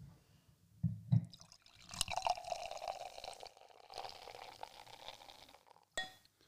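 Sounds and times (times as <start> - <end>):
beer pouring into a glass: 1.3 - 6.0.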